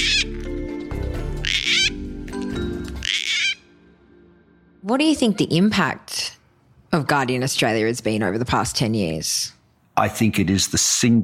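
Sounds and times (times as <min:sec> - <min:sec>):
gang-gang cockatoo harsh creaky screeching calls: 0:00.0 - 0:00.4, 0:01.4 - 0:02.0, 0:02.9 - 0:03.8
speech: 0:04.9 - 0:06.2, 0:06.9 - 0:11.2.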